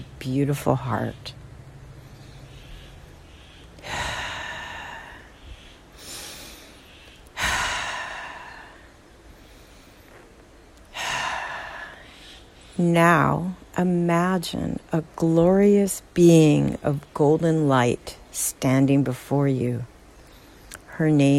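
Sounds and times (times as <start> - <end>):
speech: 0.2 - 1.4, 12.8 - 19.9, 21.0 - 21.3
deep breaths during a guided meditation: 1.8 - 12.8.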